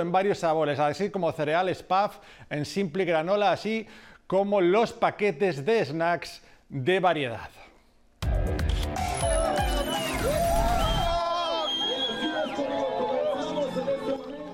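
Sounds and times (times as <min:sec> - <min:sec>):
speech: 0:00.0 - 0:07.7
large crowd of runners dressed as Santa Claus cheering in Mexico City: 0:08.8 - 0:14.5
overlapping excited voices and shouts of race runners: 0:09.1 - 0:14.5.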